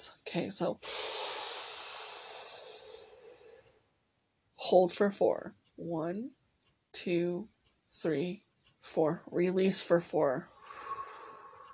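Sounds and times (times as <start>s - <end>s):
speech: 0.0s - 1.0s, 4.7s - 6.4s, 7.0s - 10.5s
slow breath in during an anxiety-calming breathing exercise: 0.8s - 3.8s, 10.5s - 11.7s.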